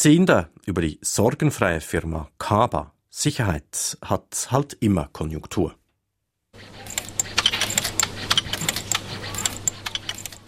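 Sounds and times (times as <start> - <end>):
speech: 0.0 - 5.8
lock cylinder production machines clicking with metallic ticks: 6.6 - 10.4.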